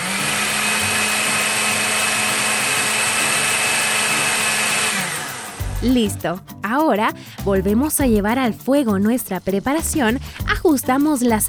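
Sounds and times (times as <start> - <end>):
blender pureeing soup: 0.0 - 5.8
speech: 5.8 - 11.4.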